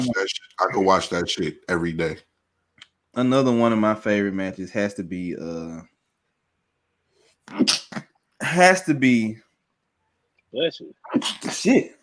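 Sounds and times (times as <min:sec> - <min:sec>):
speech: 0:00.0 - 0:02.3, 0:03.2 - 0:05.9, 0:07.5 - 0:09.4, 0:10.5 - 0:12.0
loud human sneeze: 0:07.5 - 0:08.1, 0:11.0 - 0:11.7.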